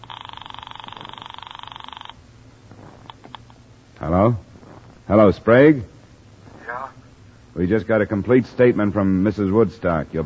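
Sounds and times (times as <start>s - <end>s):
telephone ringing upstairs: 0.0s - 2.2s
faint scattered small sounds: 0.0s - 10.2s
speech: 4.0s - 4.5s, 5.1s - 5.9s, 7.6s - 10.2s.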